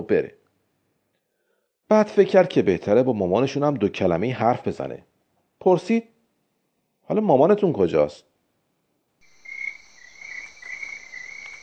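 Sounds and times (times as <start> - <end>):
speech: 0.0 - 0.4, 1.9 - 6.1, 7.1 - 8.3
high-pitched shrill frog trill: 9.2 - 11.6.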